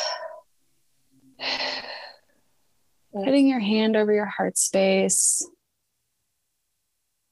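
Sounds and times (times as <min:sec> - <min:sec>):
deep breaths during a guided breathing exercise: 0:00.0 - 0:00.4, 0:01.4 - 0:02.4
speech: 0:03.2 - 0:05.6.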